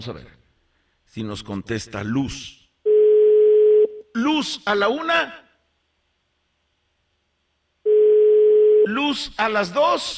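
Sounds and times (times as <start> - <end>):
speech: 0.0 - 0.4, 1.1 - 2.6, 4.2 - 5.4, 8.8 - 10.1
telephone line tone while calling someone: 2.9 - 4.0, 7.8 - 8.9.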